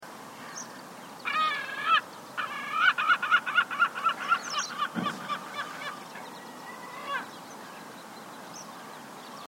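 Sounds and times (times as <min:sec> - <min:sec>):
Armenian gull calling: 0:01.2 - 0:07.3.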